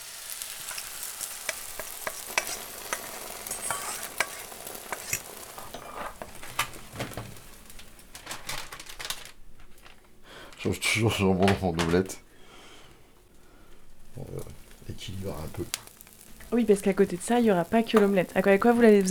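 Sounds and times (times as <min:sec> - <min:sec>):
taps and scrapes of stirring in a frying pan: 0:00.0 - 0:08.6, 0:12.7 - 0:19.1
onion and paprika sizzling in a frying pan: 0:00.0 - 0:19.1
speech: 0:10.6 - 0:12.2, 0:15.2 - 0:15.9, 0:16.5 - 0:19.1.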